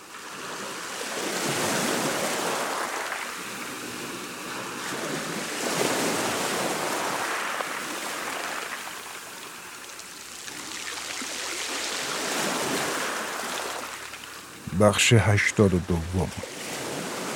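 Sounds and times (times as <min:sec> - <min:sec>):
sea waves breaking on the shore with hiss of foam: 0:00.0 - 0:17.3
wind: 0:00.0 - 0:17.3
speech: 0:14.8 - 0:16.6.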